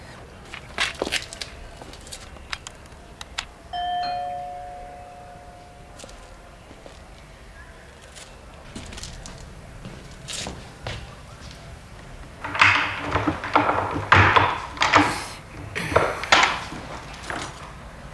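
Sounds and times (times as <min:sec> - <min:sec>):
faint footsteps: 0:00.0 - 0:18.1
doorbell ringing with a two-note chime: 0:03.7 - 0:06.8.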